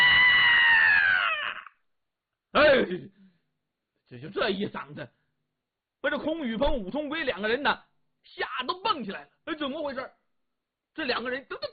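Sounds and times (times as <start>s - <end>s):
woman's piercing scream from outside: 0.0s - 1.8s
speech: 2.8s - 3.2s, 4.1s - 5.2s, 6.0s - 10.2s, 11.0s - 11.7s.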